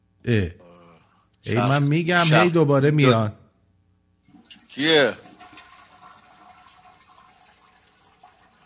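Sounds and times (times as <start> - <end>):
speech: 0.2 - 0.6, 1.4 - 3.4, 4.8 - 5.2
toilet flushing: 4.3 - 8.6.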